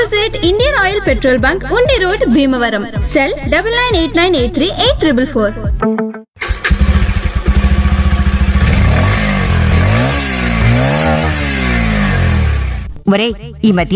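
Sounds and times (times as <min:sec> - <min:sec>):
speech: 0:00.2 - 0:06.2, 0:13.1 - 0:13.9
Bajaj Pulsar 150cc motorcycle engine starting, idling and revving: 0:06.4 - 0:13.0.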